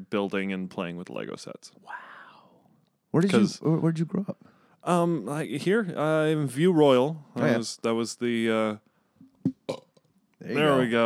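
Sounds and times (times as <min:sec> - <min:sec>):
speech: 0:00.0 - 0:02.2, 0:03.1 - 0:09.8, 0:10.4 - 0:11.0
loud burps: 0:09.5 - 0:10.1.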